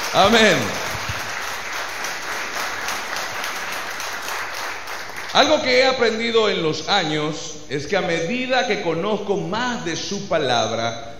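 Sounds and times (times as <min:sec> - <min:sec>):
large church audience applauding: 0:00.0 - 0:05.6
speech: 0:00.1 - 0:00.8, 0:05.3 - 0:11.1.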